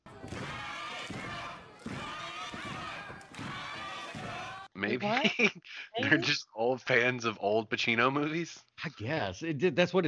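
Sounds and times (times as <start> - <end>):
wrestling crowd chanting a female wrestler's name in unison: 0.0 - 4.8
laughter: 2.3 - 6.3
speech: 4.8 - 10.0.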